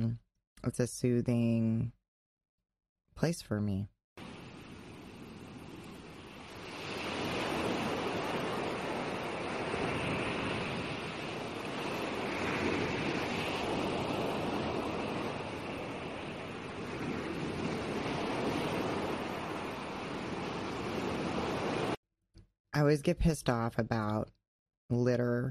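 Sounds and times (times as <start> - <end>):
speech: 0.1 - 2.0, 3.2 - 3.9, 22.9 - 25.4
ocean waves breaking on the shore: 4.2 - 22.0
wind noise: 4.2 - 22.0.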